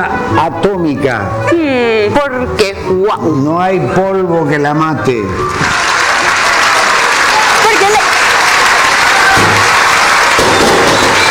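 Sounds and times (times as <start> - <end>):
speech: 0.0 - 5.8
audience applause: 5.4 - 11.2.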